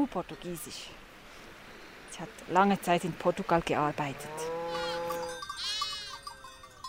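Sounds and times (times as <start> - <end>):
speech: 0.0 - 1.0, 2.2 - 4.8
sheep bleating on a mountain slope: 3.9 - 6.4
faint bell tinkles outdoors: 5.0 - 6.8.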